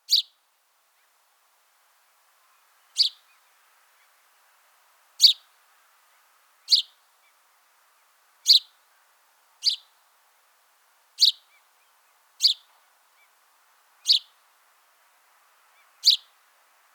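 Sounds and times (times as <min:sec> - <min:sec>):
house sparrow Passer domesticus chirping: 0:00.1 - 0:00.3, 0:06.7 - 0:06.9, 0:08.5 - 0:08.7, 0:09.6 - 0:09.9, 0:11.2 - 0:11.5, 0:12.4 - 0:12.7, 0:14.0 - 0:14.3, 0:15.8 - 0:16.3.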